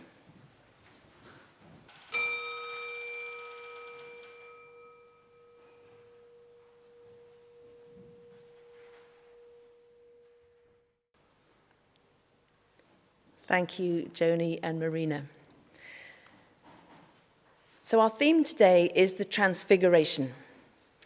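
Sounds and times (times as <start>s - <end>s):
singing bowl struck in a quiet room: 1.9s - 11.0s
speech: 13.5s - 15.4s, 17.9s - 20.4s.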